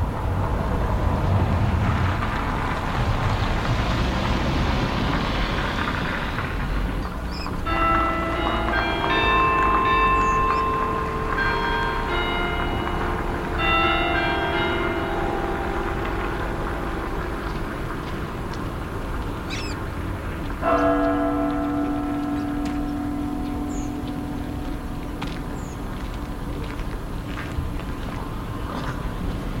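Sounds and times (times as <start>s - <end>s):
steady road traffic: 0.0s - 29.5s
church bell striking one o'clock in the afternoon: 7.5s - 28.6s.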